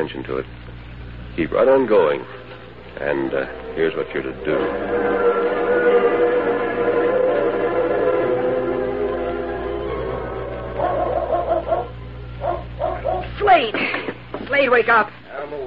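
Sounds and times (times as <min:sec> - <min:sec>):
speech: 0:00.0 - 0:00.7, 0:01.4 - 0:05.3, 0:14.6 - 0:15.6
steady low rumble: 0:00.4 - 0:13.6
dog barking and yipping: 0:10.6 - 0:13.4.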